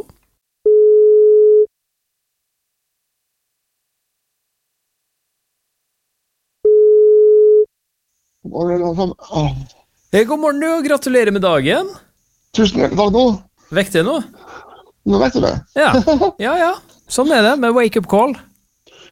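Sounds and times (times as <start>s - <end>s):
telephone ringback tones on a phone line while placing a call: 0.7s - 1.7s, 6.6s - 7.7s
speech: 8.5s - 18.5s.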